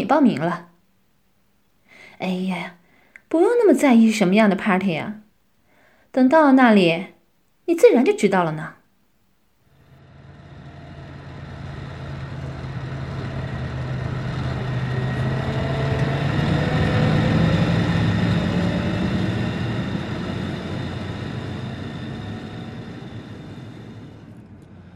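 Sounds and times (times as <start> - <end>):
speech: 0.1 - 0.7, 2.2 - 5.2, 6.1 - 8.8
car engine humming while driving: 9.7 - 24.9.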